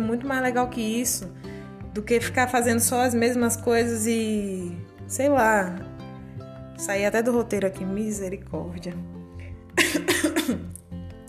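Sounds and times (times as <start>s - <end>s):
speech: 0.0s - 5.9s, 6.8s - 9.2s, 9.8s - 10.8s
person coughing in a harsh fit: 9.8s - 10.8s.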